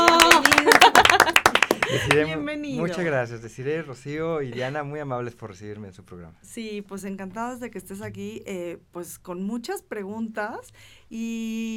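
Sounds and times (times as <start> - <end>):
overlapping voices cheering and laughing: 0.0 - 2.2
small group clapping briskly: 0.0 - 2.4
speech: 1.9 - 11.7.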